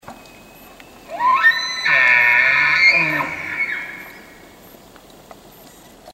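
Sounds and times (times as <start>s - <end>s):
elk bugling: 0.1s - 4.7s.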